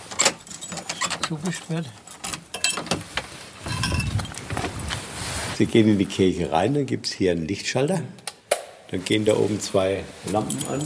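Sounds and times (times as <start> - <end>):
church keys jangling on a ring: 0.1 - 2.8, 3.7 - 4.4, 10.4 - 10.8
person murmuring: 1.3 - 2.0
speech: 1.3 - 2.1, 5.6 - 8.2, 8.9 - 10.8
low rumbling handling noise: 3.6 - 5.2.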